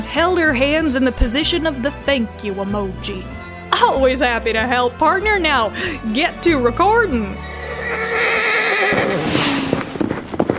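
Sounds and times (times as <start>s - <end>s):
speech: 0.0s - 7.5s
horse whinnying: 7.4s - 10.0s
hoofbeats of a horse ridden off at speed: 7.4s - 10.5s.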